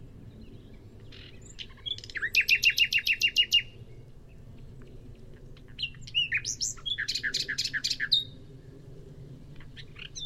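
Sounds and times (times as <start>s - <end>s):
common nightingale Luscinia megarhynchos singing: 0.0s - 4.4s, 5.6s - 8.4s, 9.6s - 10.2s.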